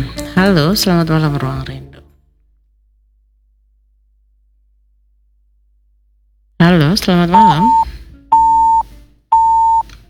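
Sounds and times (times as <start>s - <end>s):
speech: 0.0s - 1.8s, 6.9s - 8.0s
phone line tones as a caller's call drops: 7.4s - 9.9s.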